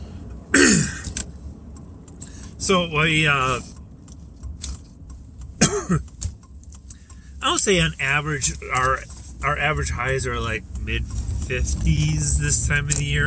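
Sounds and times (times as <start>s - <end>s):
low steady hum: 0.0s - 13.2s
person with a dry throat clearing it while driving: 0.6s - 1.1s, 5.6s - 6.0s
speech: 2.6s - 3.7s, 5.9s - 6.1s, 7.4s - 13.2s.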